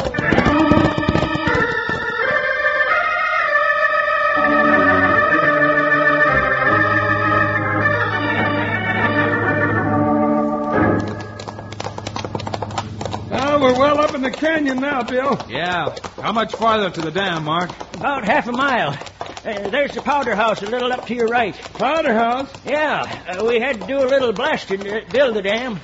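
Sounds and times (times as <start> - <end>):
horses' hooves clip-clopping as riders set off: 0.0 - 2.8, 9.0 - 25.8
sustained music: 0.2 - 12.3
speech: 14.6 - 25.8.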